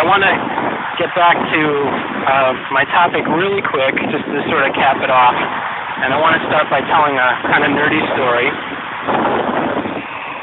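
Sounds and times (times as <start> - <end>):
loud wind buffeting a phone microphone: 0.0 - 10.4
speech: 0.1 - 9.5.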